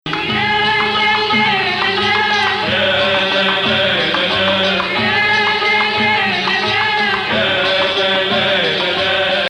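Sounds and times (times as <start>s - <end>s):
Arabic music in maqam Sikah Bayati: 0.0s - 9.4s.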